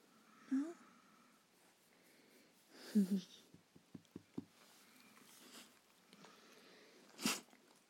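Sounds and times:
speech: 2.9 - 3.4
dog sneezing: 7.2 - 7.5.

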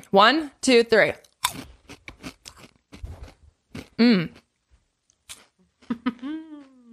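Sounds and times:
speech: 0.1 - 1.7, 4.0 - 4.4
crunchy corn snack being bitten and chewed: 1.2 - 4.4, 5.2 - 6.0.

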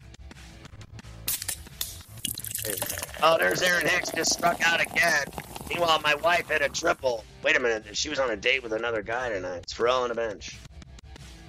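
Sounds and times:
Harp beer being poured: 2.2 - 7.2
speech: 2.6 - 10.6.

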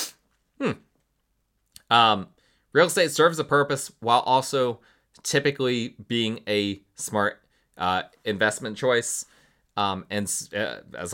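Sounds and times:
stifled sneeze: 0.0 - 0.8
speech: 0.6 - 0.8, 1.9 - 11.1.

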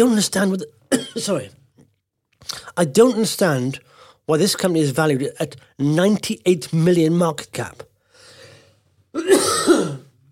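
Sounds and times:
speech: 0.0 - 1.6, 2.4 - 7.9, 9.2 - 10.0
man clearing his throat of something stuck in it: 9.2 - 10.1.

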